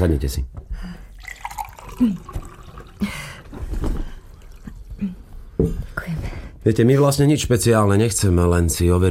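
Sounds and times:
speech: 0.0s - 0.9s, 2.0s - 2.4s, 3.0s - 3.9s, 6.6s - 9.0s
water splashing and trickling: 1.2s - 5.0s.

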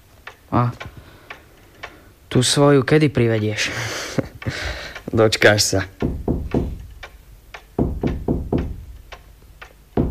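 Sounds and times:
speech: 0.5s - 0.9s, 2.4s - 6.2s
walking stick banging against a wall: 4.2s - 9.2s, 10.0s - 10.1s.

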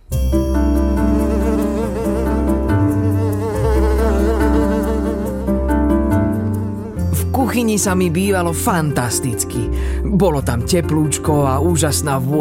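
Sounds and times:
fly buzzing: 0.8s - 7.1s
speech: 7.6s - 12.3s.

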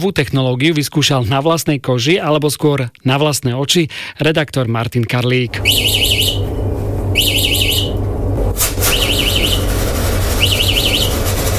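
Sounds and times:
speech: 0.0s - 6.4s
electronic security alarm warbling: 5.5s - 8.2s, 8.8s - 11.3s
steady low hum: 5.5s - 11.5s.

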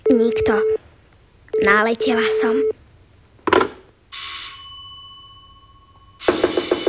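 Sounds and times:
speech: 0.1s - 0.8s, 1.6s - 2.8s
loud bell ringing with sustained metallic tone: 4.1s - 6.8s.

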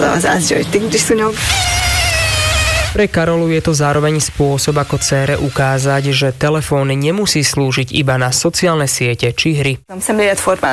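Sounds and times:
speech: 0.2s - 1.9s, 2.9s - 10.7s
Asian tiger mosquito buzzing: 1.3s - 3.0s.

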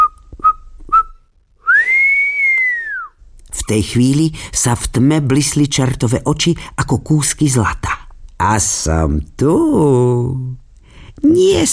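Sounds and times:
person whistling softly: 0.0s - 3.2s
speech: 3.7s - 10.6s, 11.2s - 11.7s.

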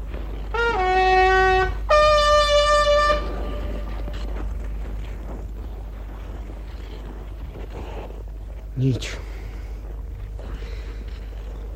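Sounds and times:
low steady rumble: 0.0s - 11.7s
hand horn blasts blown as a signal to companions: 0.5s - 4.3s
speech: 8.8s - 9.2s.

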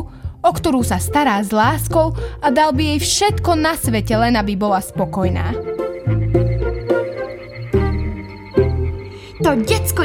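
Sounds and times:
speech: 0.4s - 5.7s, 9.5s - 10.0s
frogs croaking: 4.8s - 10.0s.

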